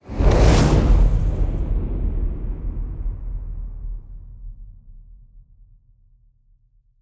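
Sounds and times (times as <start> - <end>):
large fire: 0.0 - 4.5.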